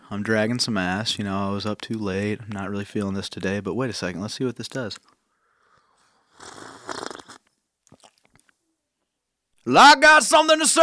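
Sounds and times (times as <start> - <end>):
speech: 0.1 - 5.1, 9.7 - 10.8
noisy slurping sip of a hot drink: 6.0 - 8.5
soft gulps or mouth clicks: 6.3 - 8.6.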